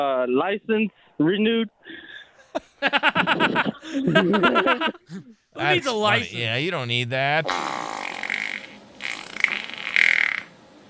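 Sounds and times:
speech: 0.0s - 8.0s
laughter: 1.2s - 7.5s
comic fart sound effect: 7.5s - 10.5s.

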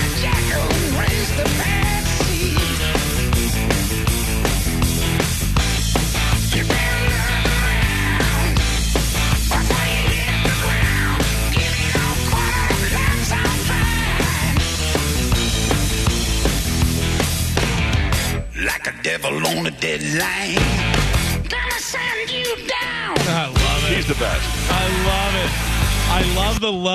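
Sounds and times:
person singing: 0.0s - 2.9s, 6.5s - 8.6s, 9.5s - 14.6s, 18.5s - 20.8s, 21.5s - 26.6s
bass line: 0.0s - 18.6s, 19.4s - 21.6s, 23.2s - 26.7s
driving drums: 0.0s - 18.6s, 20.2s - 26.8s
heavy distorted guitars: 0.0s - 26.7s
hard rock song with singing, new music released as an album teaser: 0.0s - 26.9s
speech: 26.2s - 26.9s.

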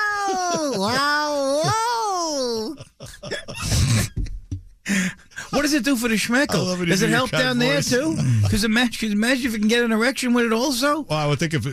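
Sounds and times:
cat yowling: 0.0s - 2.4s
laughter: 0.0s - 4.2s, 5.4s - 8.9s
speech: 0.5s - 3.2s, 5.6s - 11.7s.

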